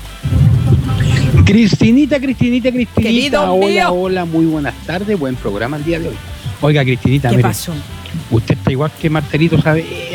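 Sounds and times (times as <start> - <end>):
loud deep thunder rumble: 0.0 - 3.0
heavy rain in a windy storm: 0.0 - 10.1
speech: 1.5 - 10.1.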